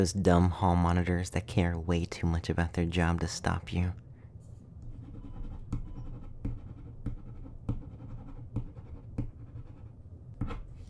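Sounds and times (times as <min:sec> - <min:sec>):
speech: 0:00.0 - 0:04.0
pen writing a note on paper: 0:04.8 - 0:10.7.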